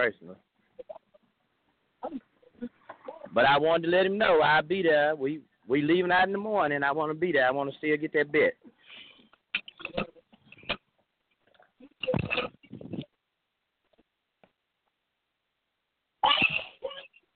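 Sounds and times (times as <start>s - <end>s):
speech: 0.0s - 1.0s, 2.0s - 9.0s
person sneezing: 16.2s - 17.0s.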